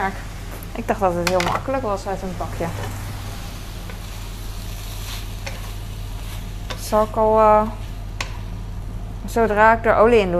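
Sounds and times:
speech: 0.0 - 3.0, 6.9 - 7.8, 9.2 - 10.3
low hum: 0.0 - 10.3
mixture being stirred in a bowl: 3.7 - 8.5.

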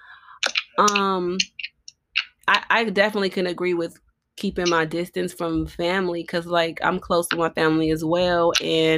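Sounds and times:
keyboard typing: 0.4 - 2.6
speech: 0.8 - 1.6, 2.5 - 8.9.

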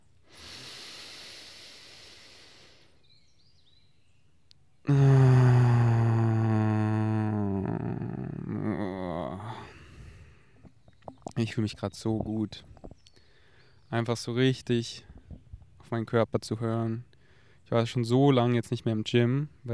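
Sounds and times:
person taking a deep breath: 0.2 - 3.0, 4.9 - 7.6, 9.4 - 10.7, 13.1 - 13.8, 17.2 - 17.6
speech: 11.4 - 12.7, 13.9 - 15.1, 15.9 - 17.1, 17.7 - 19.7.

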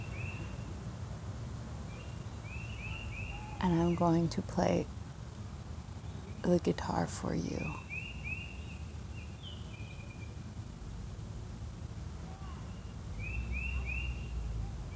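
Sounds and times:
bird singing short bright whistled phrases: 0.0 - 0.8, 1.9 - 4.4, 7.5 - 10.4, 12.7 - 14.9
speech: 3.6 - 5.0, 6.4 - 7.8.

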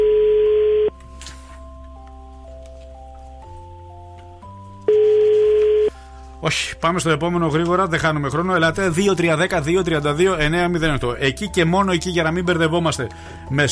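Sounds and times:
unanswered phone call ringback tones: 0.0 - 1.0, 4.9 - 5.9
speech: 6.4 - 13.7.

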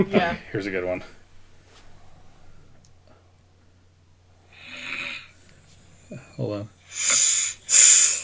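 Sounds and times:
speech: 0.0 - 1.2, 6.1 - 8.0
low steady hum: 0.0 - 8.2
woman snoring in her sleep: 4.5 - 5.4, 6.9 - 8.2.

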